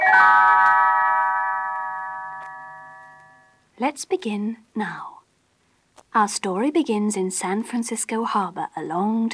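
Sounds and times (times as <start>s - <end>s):
cluster of little bells ringing in a bright page-turn chime: 0.0s - 3.6s
speech: 3.8s - 5.2s, 6.1s - 9.3s.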